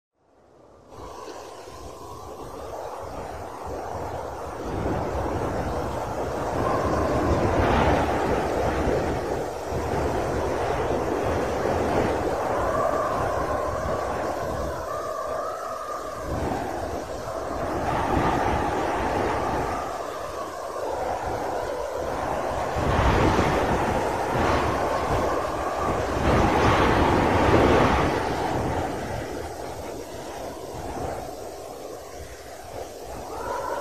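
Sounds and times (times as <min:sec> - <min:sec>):
snow: 0:00.8 - 0:33.7.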